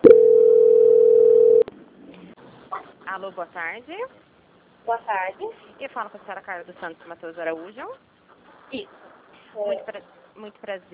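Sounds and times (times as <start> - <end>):
telephone call transfer beep: 0.0 - 1.6
speech: 3.2 - 8.1, 8.7 - 10.9.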